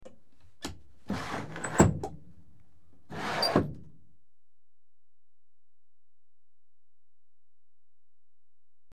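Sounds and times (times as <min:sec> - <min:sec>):
sliding windows opening: 0:00.6 - 0:02.2, 0:03.1 - 0:03.9.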